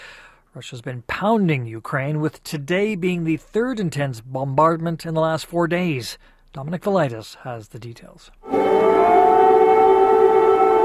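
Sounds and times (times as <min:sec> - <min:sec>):
speech: 0:00.5 - 0:08.9
air raid siren wailing in a city: 0:08.4 - 0:10.8.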